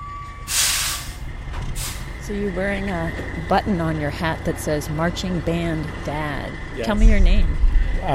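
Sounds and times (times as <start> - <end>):
air brakes hissing on a large black tractor-trailer truck: 0.5 - 2.2
speech: 2.3 - 8.1.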